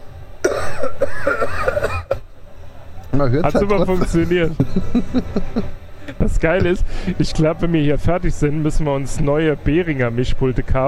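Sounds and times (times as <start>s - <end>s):
person clearing throat: 0.4s - 2.2s
speech: 3.2s - 10.8s
laughter: 3.4s - 6.3s.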